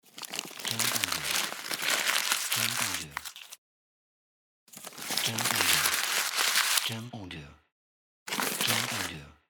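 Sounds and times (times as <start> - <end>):
paper unfolding: 0.0 - 3.6, 4.7 - 6.9, 8.3 - 9.1.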